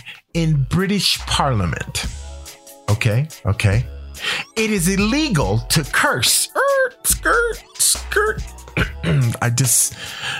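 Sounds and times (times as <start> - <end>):
speech: 0.4 - 2.2, 2.9 - 10.3
person clearing throat because something is caught in it: 8.7 - 9.4.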